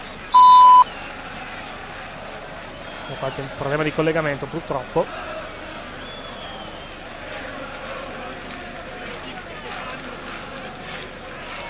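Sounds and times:
voicemail beep before leaving a message: 0.3s - 0.9s
speech: 3.1s - 5.3s.

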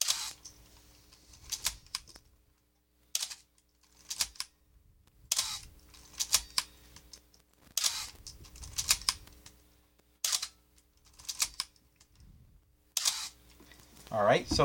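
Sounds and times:
squealing film camera shutter cocked and fired: 0.0s - 0.5s, 1.3s - 2.2s, 3.1s - 4.5s, 5.3s - 6.7s, 7.7s - 9.4s, 10.2s - 11.8s, 13.0s - 13.4s
speech: 14.2s - 14.6s.

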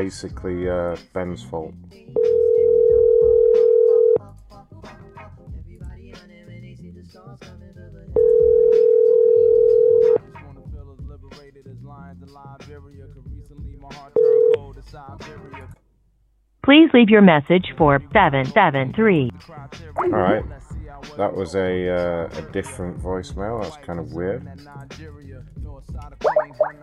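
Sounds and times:
speech: 0.0s - 2.4s, 12.2s - 15.8s, 16.6s - 26.8s
telephone ringing tone: 2.2s - 4.2s, 8.2s - 10.2s, 14.2s - 14.6s.

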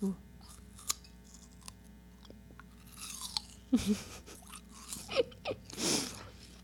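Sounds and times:
biting into a crunchy yellow apple pear: 0.4s - 3.7s, 4.3s - 5.1s.

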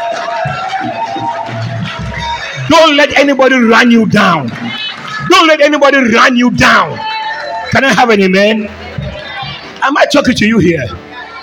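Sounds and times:
church audience clapping: 0.0s - 8.2s
cheers: 0.0s - 9.8s
crowd noise: 0.0s - 11.4s
speech: 2.7s - 7.1s, 7.7s - 8.8s, 9.8s - 11.0s.

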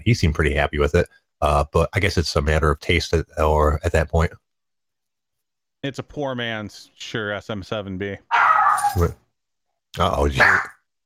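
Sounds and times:
speech: 0.0s - 4.4s, 5.8s - 9.2s, 10.0s - 10.8s
dog bark-like yelp in a room: 10.3s - 10.7s.

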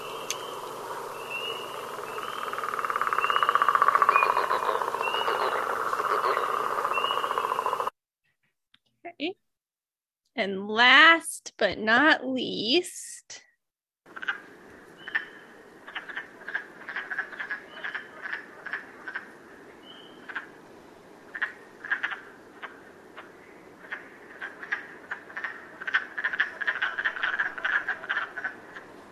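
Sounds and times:
frogs croaking in short clicky pulses over a buzzing chorus: 0.0s - 8.0s, 14.1s - 29.1s
speech: 10.4s - 13.1s.

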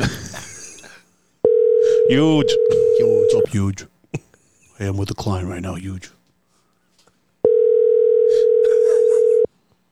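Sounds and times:
ringback tone from a phone call: 1.5s - 3.5s, 7.4s - 9.5s
speech: 2.1s - 4.2s, 4.8s - 6.2s.

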